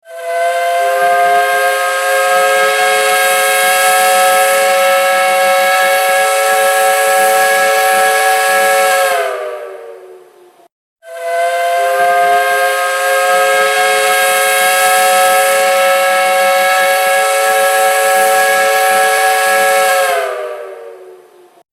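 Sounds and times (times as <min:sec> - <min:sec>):
long whistle: 0:00.0 - 0:10.3, 0:11.0 - 0:21.4.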